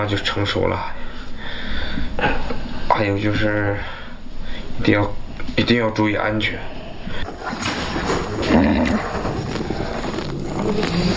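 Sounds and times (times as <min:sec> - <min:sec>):
speech: 0:00.0 - 0:04.0, 0:04.8 - 0:09.2, 0:10.7 - 0:11.1
horse hooves clip-clopping: 0:07.2 - 0:11.1
horses neighing as they are caught and saddled for riding: 0:07.2 - 0:11.1
steady broadband noise: 0:07.2 - 0:11.1.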